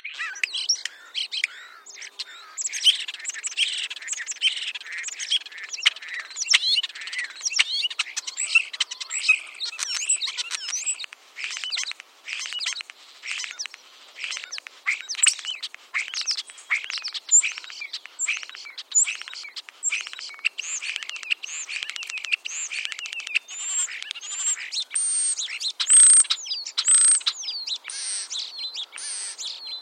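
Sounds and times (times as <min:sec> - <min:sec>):
European starling making eagle sounds: 0:00.2 - 0:29.5.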